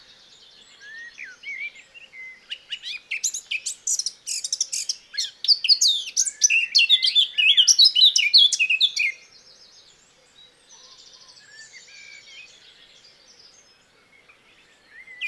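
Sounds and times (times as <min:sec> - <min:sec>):
Eurasian blackcap singing fluty and chattering notes: 0:00.8 - 0:09.2.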